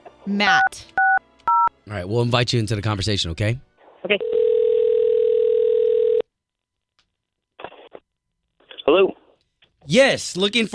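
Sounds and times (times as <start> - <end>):
speech: 0.2 - 1.0, 1.9 - 4.4, 9.9 - 10.7
steady telephone tone: 4.2 - 6.2.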